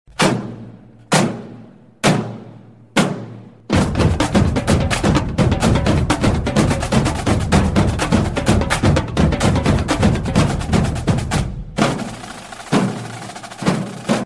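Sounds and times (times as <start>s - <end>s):
drum beat: 3.0s - 14.2s.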